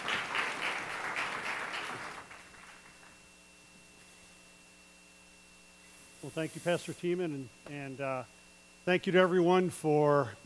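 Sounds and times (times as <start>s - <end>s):
audience applauding at a Passover presentation: 0.0s - 3.2s
speech: 6.2s - 10.4s.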